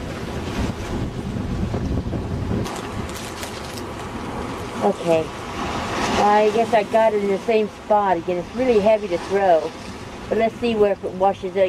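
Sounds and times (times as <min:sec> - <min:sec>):
faint splashing of waves: 0:00.0 - 0:11.6
strong wind roaring over open water: 0:00.0 - 0:11.6
speech: 0:04.8 - 0:05.4, 0:06.2 - 0:11.6.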